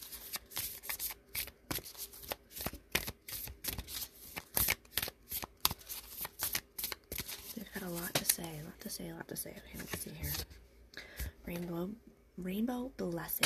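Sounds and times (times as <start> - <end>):
very stiff deck of cards being shuffled: 0.0 - 8.7, 9.7 - 10.5
speech: 8.9 - 10.6, 11.5 - 13.4.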